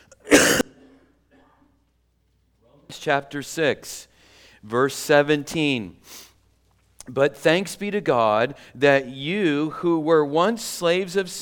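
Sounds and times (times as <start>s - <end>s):
cough: 0.0s - 1.6s
speech: 3.0s - 6.3s, 7.1s - 11.4s.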